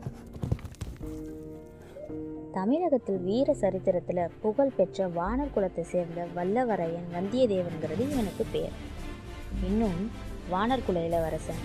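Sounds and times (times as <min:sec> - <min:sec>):
hollow horse-hoof clip-clops: 0:00.0 - 0:01.7
speech: 0:02.6 - 0:09.0, 0:09.6 - 0:11.6.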